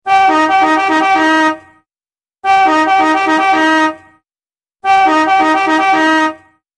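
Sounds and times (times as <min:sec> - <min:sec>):
old car horn alarm: 0:00.1 - 0:01.8, 0:02.4 - 0:04.2, 0:04.8 - 0:06.6.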